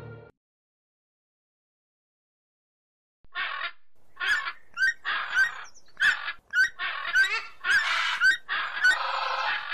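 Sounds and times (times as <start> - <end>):
flock of geese honking and squawking: 3.3 - 9.7.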